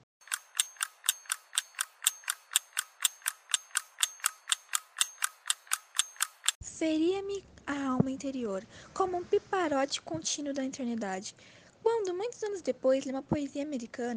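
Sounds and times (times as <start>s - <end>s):
old pendulum wall clock ticking in a living room: 0.2s - 6.6s
speech: 6.8s - 14.1s.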